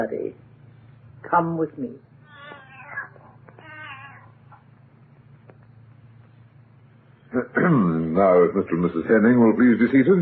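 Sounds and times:
speech: 0:00.0 - 0:00.4, 0:01.2 - 0:02.1, 0:07.3 - 0:10.2
steady low hum: 0:00.0 - 0:10.2
cat meowing: 0:02.2 - 0:04.7.

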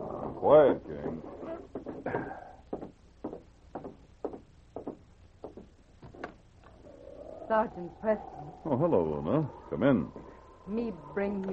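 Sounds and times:
speech: 0:00.4 - 0:02.4, 0:07.5 - 0:11.5
soft hesitant knocking on wooden office door in police barracks: 0:01.7 - 0:06.3.

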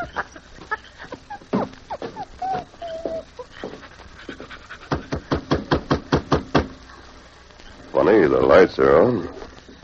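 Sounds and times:
dog whining: 0:01.2 - 0:05.2
dog panting: 0:01.9 - 0:05.6
speech: 0:08.4 - 0:09.4.

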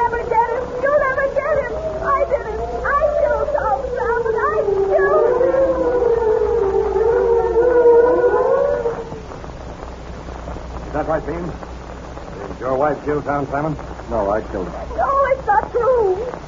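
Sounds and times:
police siren wailing: 0:00.0 - 0:09.4
speech: 0:13.0 - 0:16.4.

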